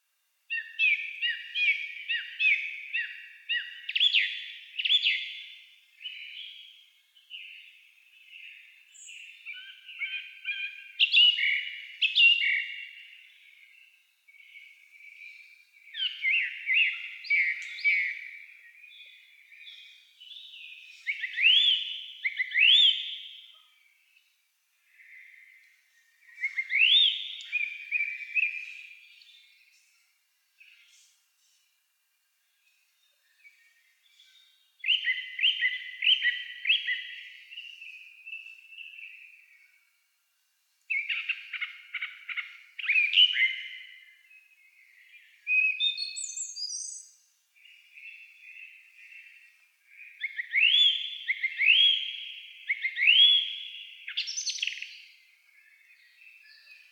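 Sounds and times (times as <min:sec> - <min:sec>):
Turdus philomelos song thrush: 0:00.0 - 0:56.9.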